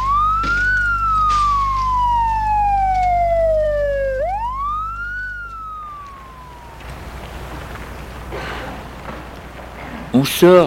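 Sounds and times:
ambulance siren wailing: 0:00.0 - 0:07.7.

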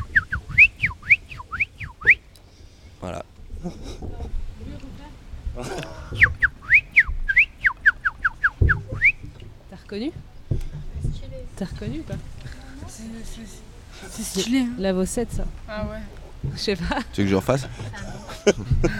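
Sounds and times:
person whistling a birdsong imitation: 0:00.0 - 0:02.3, 0:06.1 - 0:09.3
speech: 0:03.0 - 0:03.8, 0:10.0 - 0:10.2, 0:11.8 - 0:12.4, 0:13.0 - 0:18.9
people talking and laughing: 0:03.0 - 0:07.0, 0:09.8 - 0:18.9.

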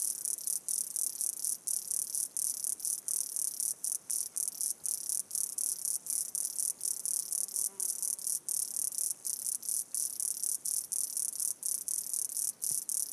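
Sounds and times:
insects in Chapada Diamantina park in Brazil: 0:00.0 - 0:13.1.

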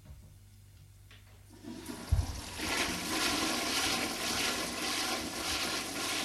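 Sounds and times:
water gushing from a tap into a washbasin: 0:01.6 - 0:06.2.

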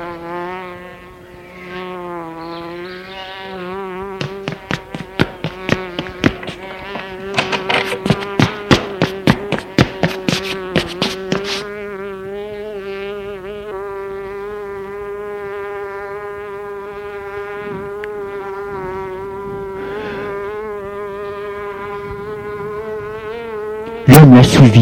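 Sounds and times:
housefly buzzing: 0:00.0 - 0:24.8
sharp rapid tapping clicks: 0:04.2 - 0:11.6.

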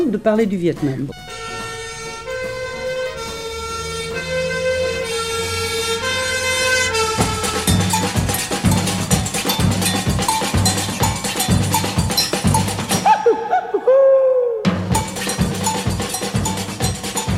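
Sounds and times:
speech: 0:00.1 - 0:01.4
fire siren in Rio calling firefighters to a burning coffee factory: 0:01.1 - 0:08.0
rhythmic clanging clatter: 0:01.2 - 0:13.2, 0:14.8 - 0:17.3
laughter: 0:13.0 - 0:14.4.

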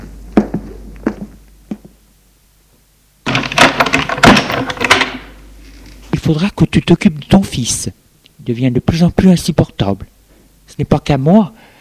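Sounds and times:
door being opened with rattling, scraping noise: 0:03.2 - 0:05.3
thuds and clunks: 0:03.3 - 0:05.3
speech: 0:06.3 - 0:10.1, 0:10.7 - 0:11.7.

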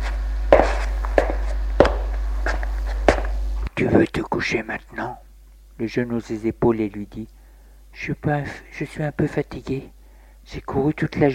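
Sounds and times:
footsteps of a person walking after leaving a bathroom: 0:00.0 - 0:03.4
low hum: 0:00.0 - 0:10.5
speech: 0:03.8 - 0:11.3.

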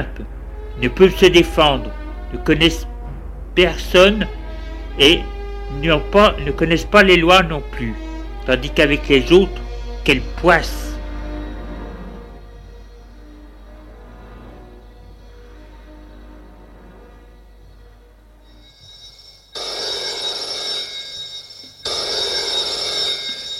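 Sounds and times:
speech: 0:00.0 - 0:02.9, 0:03.6 - 0:04.4, 0:05.0 - 0:10.9
quiet low hum: 0:00.0 - 0:23.5
old-fashioned telephone bell ringing: 0:18.5 - 0:23.5.

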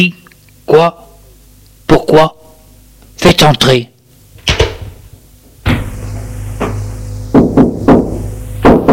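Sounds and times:
speech: 0:00.0 - 0:01.0, 0:02.1 - 0:02.4, 0:03.2 - 0:03.9
knocking on an office door: 0:06.6 - 0:08.9.

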